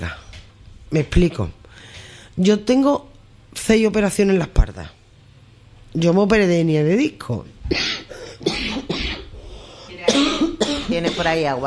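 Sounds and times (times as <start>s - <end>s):
speech: 0.0s - 0.2s, 0.9s - 5.0s, 5.9s - 7.9s, 10.9s - 11.6s
person coughing: 7.7s - 11.4s.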